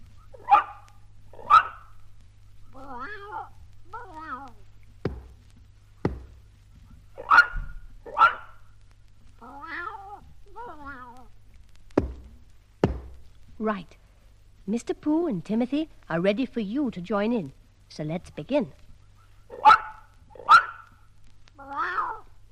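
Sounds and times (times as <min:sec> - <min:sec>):
dog barking: 0:00.4 - 0:01.9, 0:07.2 - 0:08.6, 0:19.5 - 0:20.9
cat meowing: 0:02.7 - 0:04.6, 0:09.4 - 0:11.3, 0:21.6 - 0:22.5
speech: 0:13.6 - 0:14.0, 0:14.7 - 0:18.8.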